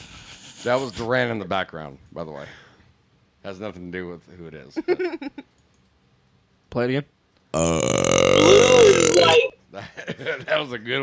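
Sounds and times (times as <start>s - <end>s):
speech: 0.6s - 2.7s, 3.4s - 5.6s, 6.7s - 11.0s
loud deep gravelly burp: 7.6s - 9.4s.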